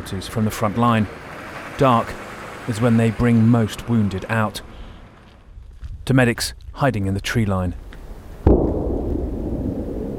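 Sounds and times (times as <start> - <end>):
speech: 0.0 - 4.7, 6.1 - 7.8
deep continuous rumble after bombs exploding on a village in Ukraine: 0.0 - 10.1
large bomb exploding on a village in Ukraine: 8.4 - 10.1.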